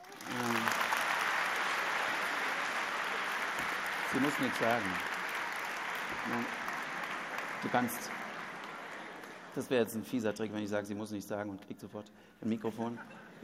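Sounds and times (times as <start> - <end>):
audience applause: 0.0 - 10.2
speech: 4.1 - 5.1, 6.2 - 6.6, 7.6 - 8.2, 9.6 - 13.4.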